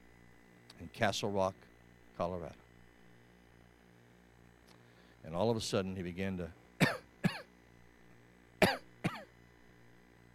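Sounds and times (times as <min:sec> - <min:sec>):
speech: 0:00.8 - 0:02.6, 0:05.2 - 0:06.6
person imitating a harsh rasping cough: 0:06.8 - 0:07.5, 0:08.6 - 0:09.3.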